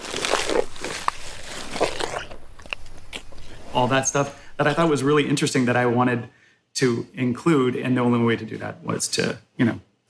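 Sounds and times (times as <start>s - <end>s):
elephant chewing: 0.0s - 4.9s
elephant lip smacking: 1.0s - 3.9s
speech: 3.8s - 10.0s.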